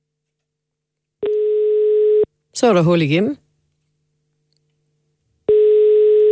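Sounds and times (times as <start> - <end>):
steady telephone ringback tone: 1.3 - 2.3, 5.5 - 6.3
speech: 2.6 - 3.4.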